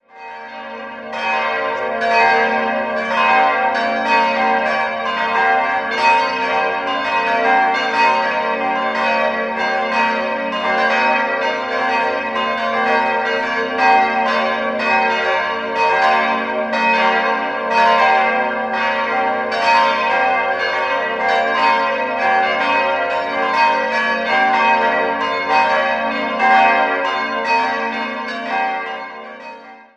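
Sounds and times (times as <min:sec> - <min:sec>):
bells ringing: 0:00.1 - 0:29.9.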